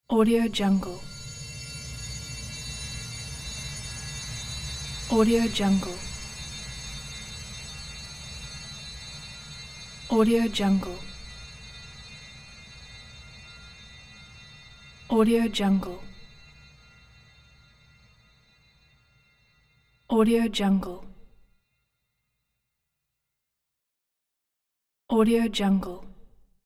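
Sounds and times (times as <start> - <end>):
horror drone: 0.1 - 21.2.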